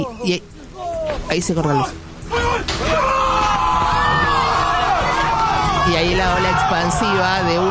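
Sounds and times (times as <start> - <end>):
speech: 0.0 - 3.2, 5.9 - 7.6
large crowd shouting and cheering: 0.8 - 7.6.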